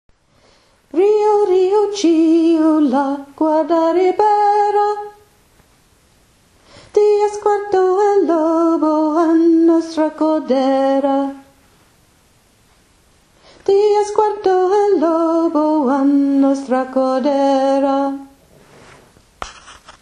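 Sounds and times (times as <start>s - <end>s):
soprano voice: 0.9s - 5.3s, 6.9s - 11.6s, 13.6s - 18.4s.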